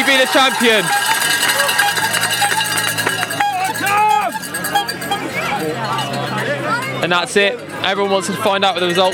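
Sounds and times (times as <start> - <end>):
crowd of spectators cheering and shouting: 0.0 - 9.1
spectators ringing cowbells at a hill climb: 0.0 - 9.1
speech: 0.2 - 1.7, 7.0 - 9.1.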